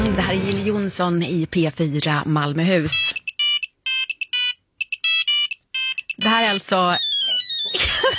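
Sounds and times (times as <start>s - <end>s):
speech: 0.2s - 3.2s, 6.6s - 7.1s
Nokia 3210 mobile phone ringtone: 2.9s - 8.1s.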